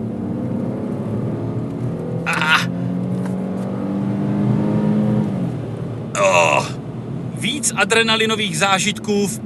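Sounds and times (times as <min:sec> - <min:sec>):
Smart Cabrio car engine revving: 0:00.0 - 0:07.4
speech: 0:07.6 - 0:09.4.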